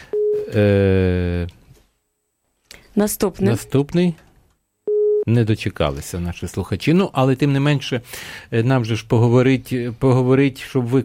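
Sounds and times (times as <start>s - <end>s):
telephone line tone from an incoming call: 0.1s - 0.6s, 4.9s - 5.3s
speech: 0.5s - 1.0s, 3.0s - 4.3s, 5.3s - 11.0s.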